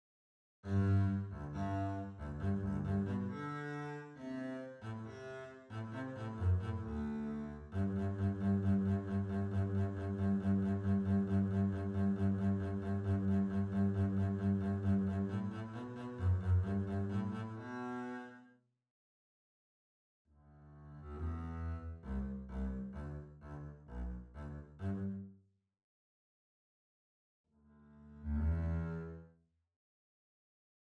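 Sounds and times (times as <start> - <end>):
double bass: 0.7 - 3.8, 5.8 - 17.5, 20.8 - 25.2, 27.9 - 29.2.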